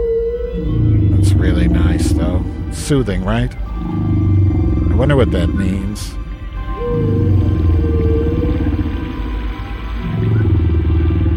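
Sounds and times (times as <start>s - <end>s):
thin gliding high tone: 0.0s - 11.3s
whale calls: 0.0s - 11.3s
speech: 1.4s - 4.2s, 5.0s - 6.2s.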